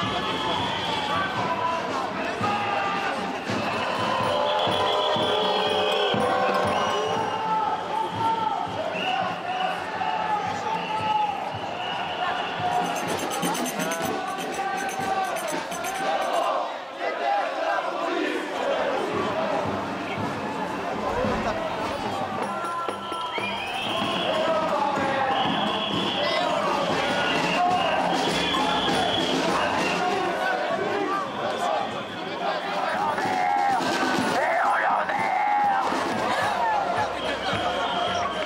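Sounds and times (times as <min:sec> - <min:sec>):
street protest crowd voices in Paris: 0:00.0 - 0:38.4.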